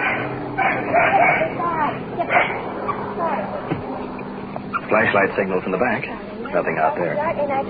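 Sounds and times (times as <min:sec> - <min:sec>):
puppy yipping barks: 0:00.0 - 0:01.6, 0:02.2 - 0:03.0
puppy whining: 0:00.0 - 0:05.1
low hum: 0:00.0 - 0:07.6
speech: 0:04.9 - 0:07.6.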